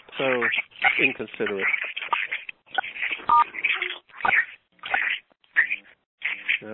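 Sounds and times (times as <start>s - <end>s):
harsh crackly phone line noise: 0.0s - 6.7s
speech: 0.2s - 1.9s
dialing-style beep tone: 3.3s - 3.5s.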